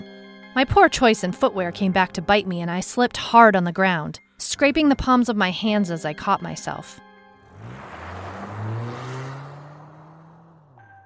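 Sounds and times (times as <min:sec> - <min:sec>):
speech: 0:00.6 - 0:07.0
car engine revving and pulling away: 0:07.4 - 0:11.0
road and tire noise: 0:07.4 - 0:11.0.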